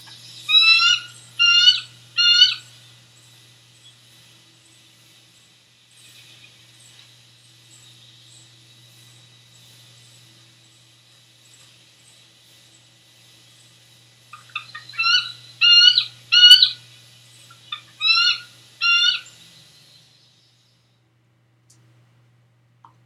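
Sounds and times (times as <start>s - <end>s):
eagle peal call: 0.0s - 3.4s, 14.3s - 19.4s.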